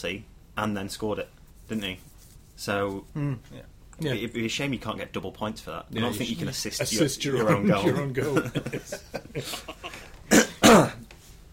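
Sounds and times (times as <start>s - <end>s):
speech: 0.0s - 11.0s
laughter: 6.2s - 10.1s
wet chesty cough: 10.3s - 11.0s.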